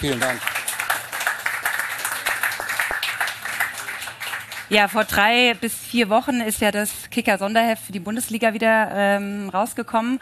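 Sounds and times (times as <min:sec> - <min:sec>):
speech: 0:00.0 - 0:00.5, 0:04.7 - 0:10.2
crowd applauding: 0:00.0 - 0:05.3.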